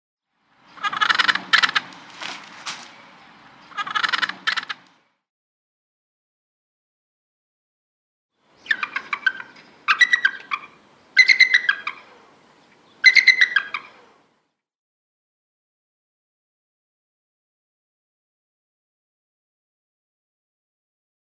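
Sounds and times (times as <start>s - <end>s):
lappet-faced vulture calling: 0.7s - 5.1s, 8.5s - 14.3s.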